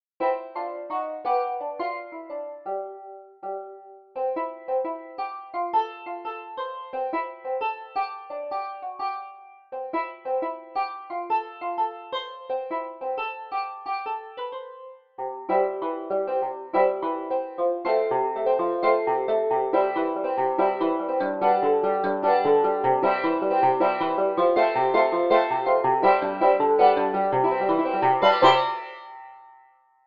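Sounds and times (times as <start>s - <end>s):
cheap banjo: 0.2s - 29.6s.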